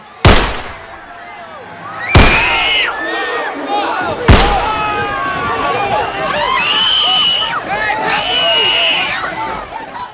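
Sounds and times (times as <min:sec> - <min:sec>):
people shouting: 0:00.0 - 0:09.6
agitated crowd voices: 0:00.0 - 0:10.1
gunshots fired point-blank on a stopped school bus: 0:00.2 - 0:01.0, 0:02.2 - 0:02.8, 0:04.3 - 0:04.8.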